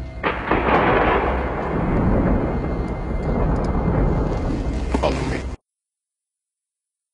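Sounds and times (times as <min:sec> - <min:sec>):
thunder rumbling: 0:00.2 - 0:05.6.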